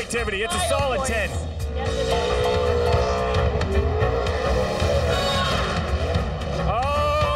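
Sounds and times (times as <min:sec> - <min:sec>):
speech: 0:00.1 - 0:02.5
car engine revving hard: 0:01.6 - 0:07.2.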